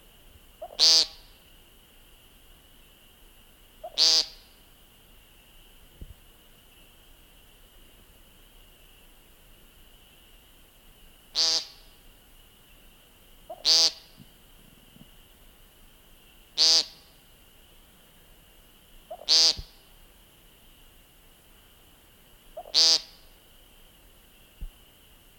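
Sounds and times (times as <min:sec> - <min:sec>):
American Woodcock Scolopax minor giving peent calls: 0:00.5 - 0:01.6, 0:03.7 - 0:15.5, 0:18.8 - 0:21.0, 0:22.4 - 0:23.4.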